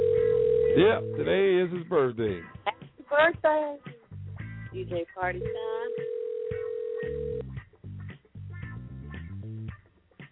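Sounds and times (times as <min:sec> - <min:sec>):
telephone ringback tone of an outgoing call on a tinny phone line: 0:00.0 - 0:01.3, 0:05.4 - 0:07.4
speech: 0:00.8 - 0:04.0, 0:04.7 - 0:06.1.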